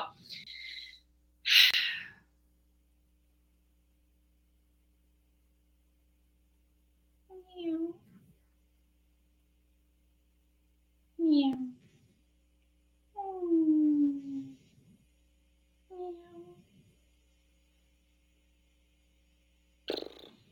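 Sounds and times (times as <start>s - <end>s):
person imitating a cat coughing up a hairball with gurgly vocal bursts: 0.0s - 2.2s, 13.2s - 14.7s, 19.9s - 20.4s.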